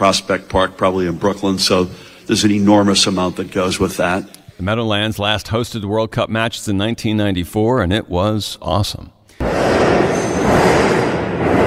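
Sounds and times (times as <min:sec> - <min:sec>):
speech: 0:00.0 - 0:10.8
subway train rumbling: 0:09.4 - 0:11.6.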